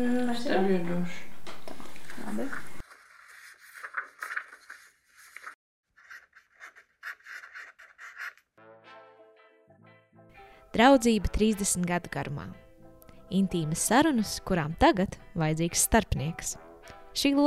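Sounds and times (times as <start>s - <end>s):
speech: 0.0s - 1.3s, 2.3s - 2.7s, 10.8s - 12.6s, 13.3s - 17.4s
pen scratching across paper: 4.5s - 8.5s.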